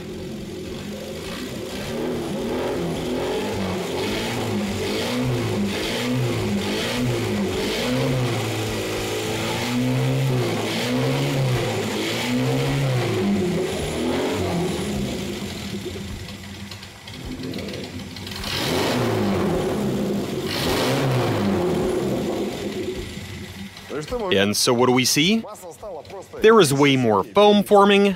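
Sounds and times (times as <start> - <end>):
engine revving: 0.0 - 28.1
speech: 24.1 - 25.6, 26.4 - 28.1.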